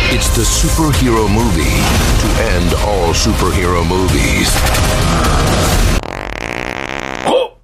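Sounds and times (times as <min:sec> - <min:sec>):
speech: 0:00.2 - 0:06.0
loud drawn-out buzzy fart: 0:04.6 - 0:07.5.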